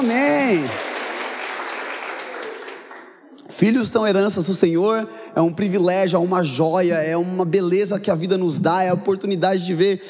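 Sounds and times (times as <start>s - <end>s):
speech: 0.0s - 0.8s, 3.6s - 10.0s
crowd applause: 0.0s - 3.3s.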